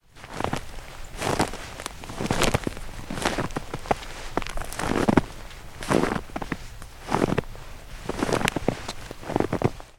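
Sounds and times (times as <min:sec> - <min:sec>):
footstep in snow: 0:00.0 - 0:09.9.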